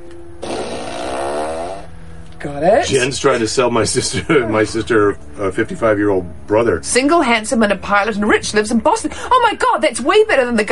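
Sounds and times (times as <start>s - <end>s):
fart machine raspberry: 0.3s - 2.0s
speech: 2.4s - 10.7s.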